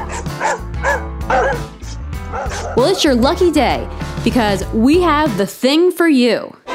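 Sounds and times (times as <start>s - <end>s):
dog barking loudly: 0.0s - 3.1s
speech: 2.8s - 6.6s.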